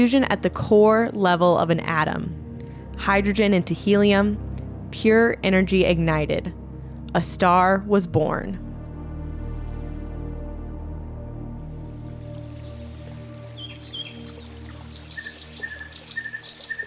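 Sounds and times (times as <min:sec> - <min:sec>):
speech: 0:00.0 - 0:02.4, 0:03.0 - 0:08.6
meandering creek trickling: 0:11.7 - 0:16.8
birds chirping along a creek: 0:12.2 - 0:16.8.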